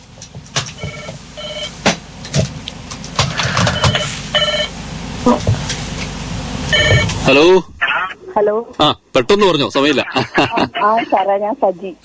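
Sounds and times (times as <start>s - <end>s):
clicks and noise: 0.0s - 1.2s, 1.8s - 4.0s
telephone ringing with an incoming call: 0.7s - 1.8s, 3.4s - 4.8s, 6.7s - 7.4s
speech: 7.3s - 7.7s, 8.4s - 12.0s
laughter: 9.8s - 11.4s.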